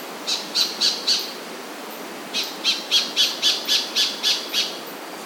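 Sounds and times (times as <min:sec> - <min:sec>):
white-faced robin calling: 0:00.3 - 0:01.5, 0:02.3 - 0:04.9.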